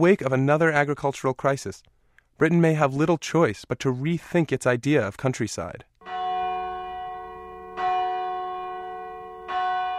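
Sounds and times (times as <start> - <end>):
speech: 0.0 - 5.9
church bells ringing for Sunday service: 6.0 - 9.9.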